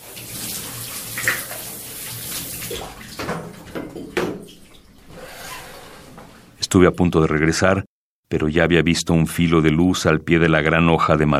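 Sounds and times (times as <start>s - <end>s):
water gushing into a bathtub from a tap: 0.0s - 6.6s
speech: 6.7s - 11.3s.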